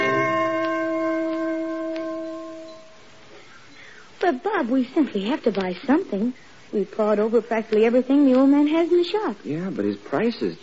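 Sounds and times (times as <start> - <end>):
Chinese gong being struck and ringing: 0.0 - 3.2
speech: 4.2 - 10.6.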